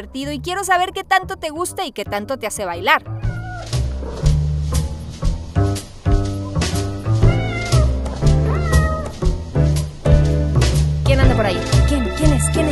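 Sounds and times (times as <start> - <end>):
speech: 0.0 - 3.8
bouncy upbeat music track with steady bass: 0.0 - 12.7
drawn-out cat meows rising and falling in pitch: 3.0 - 4.3, 7.2 - 9.3.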